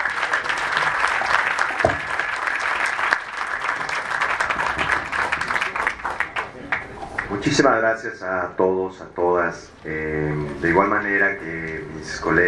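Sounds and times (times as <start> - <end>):
audience applause: 0.0 - 7.4
speech: 7.4 - 12.4.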